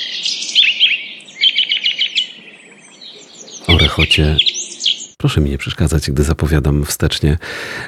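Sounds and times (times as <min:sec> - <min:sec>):
loud busy birdsong with rapid high chirps and trills: 0:00.0 - 0:05.2
speech: 0:04.0 - 0:04.6, 0:05.2 - 0:07.8.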